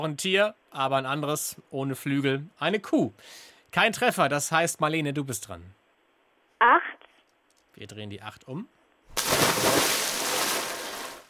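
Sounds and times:
speech: 0.0s - 5.8s, 6.6s - 7.0s, 7.8s - 9.8s
splash of something jumping into water: 9.1s - 11.2s.

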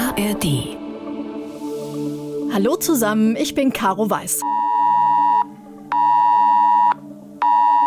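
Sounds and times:
speech: 0.2s - 0.7s, 2.5s - 4.5s
phone emergency alert tone for a nationwide warning-day test in Germany: 4.4s - 7.8s.

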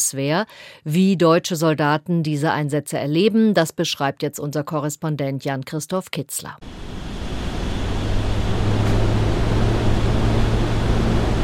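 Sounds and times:
speech: 0.1s - 6.8s
armed forces transport aircraft engines roaring on takeoff in the desert: 6.6s - 11.4s
low droning hum: 6.6s - 11.4s.

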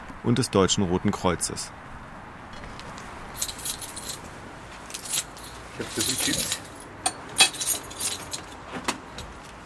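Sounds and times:
speech: 0.2s - 2.0s, 5.8s - 6.7s
keys jangling and scraping in a door lock: 3.4s - 4.2s, 4.9s - 8.5s.

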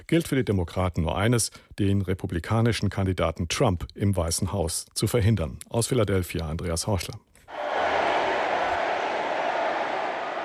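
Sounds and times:
speech: 0.0s - 7.8s
large convention crowd chanting and booing: 7.5s - 10.4s.

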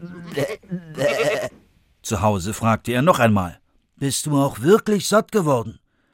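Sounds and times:
person imitating goat bleats: 0.0s - 1.6s
speech: 0.4s - 0.6s, 2.1s - 5.8s.

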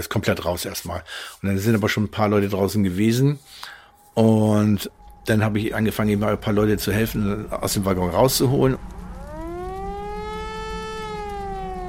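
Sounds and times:
speech: 0.0s - 9.0s
civil defense siren wailing: 2.8s - 11.8s
constant low rumble: 4.1s - 11.8s.

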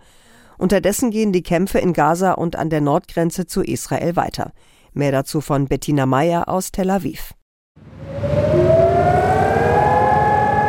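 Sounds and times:
speech: 0.6s - 8.4s
civil defense siren wailing for a memorial in Israel: 7.8s - 10.6s.

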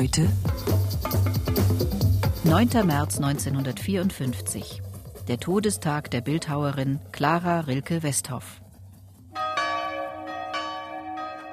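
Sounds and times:
speech: 0.0s - 1.3s, 2.5s - 8.6s
church bells ringing an alarm peal: 9.4s - 11.5s.

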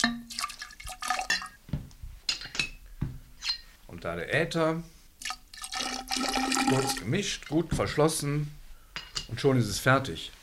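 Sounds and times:
alcohol poured into a glass container for making drops: 0.0s - 1.6s, 5.2s - 7.6s
speech: 4.0s - 5.0s, 6.2s - 8.6s, 9.3s - 10.4s.

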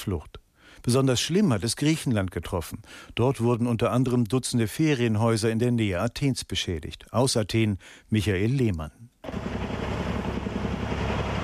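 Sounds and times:
speech: 0.0s - 9.6s
firefighting helicopters flying over a Greek holiday region during wildfires: 9.3s - 11.4s.

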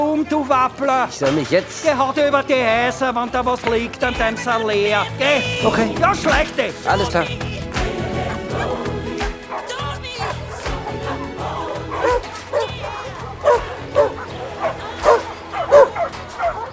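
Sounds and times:
speech: 0.2s - 7.5s
several puppies barking and yipping in a play area: 8.1s - 16.7s.

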